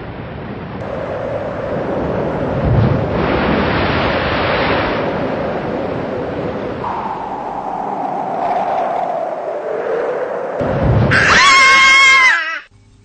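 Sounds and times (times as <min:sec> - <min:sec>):
stormy wind roaring: 0:00.0 - 0:12.7
rushing rain: 0:00.8 - 0:09.6
deep rumble of thunder: 0:00.8 - 0:11.5.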